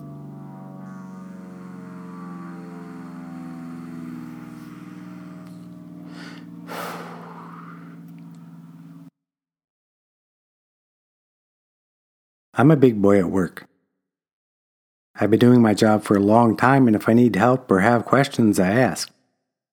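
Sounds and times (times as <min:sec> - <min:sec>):
airplane engine droning passing overhead: 0:00.0 - 0:09.1
speech: 0:12.6 - 0:13.7, 0:15.2 - 0:19.2.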